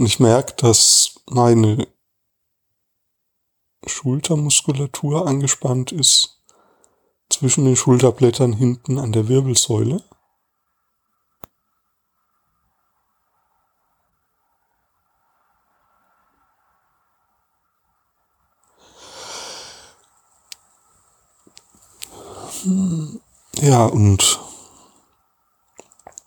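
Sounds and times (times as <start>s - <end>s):
speech: 0.0s - 2.0s, 3.8s - 6.4s, 7.3s - 10.2s, 22.6s - 24.5s
breathy yawn: 18.8s - 20.0s, 22.1s - 23.2s
small mouth clicks: 21.5s - 24.6s, 25.7s - 26.2s.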